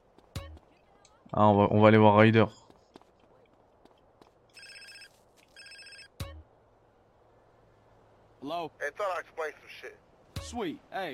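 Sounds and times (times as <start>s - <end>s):
speech: 1.3s - 2.6s, 10.6s - 11.1s
old 1990s mobile phone ringing in a video game: 4.5s - 6.4s.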